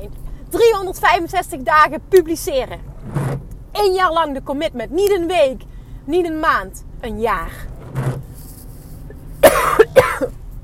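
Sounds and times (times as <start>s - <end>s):
speech: 0.0s - 3.2s, 3.8s - 7.7s
sharp breathy coughs from a tickle in the throat: 9.4s - 10.4s.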